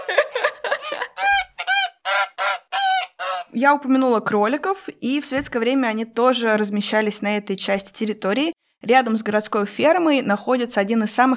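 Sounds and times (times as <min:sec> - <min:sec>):
laughter: 0:00.0 - 0:03.5
goose hissing and honking: 0:02.0 - 0:03.5
speech: 0:03.6 - 0:11.3.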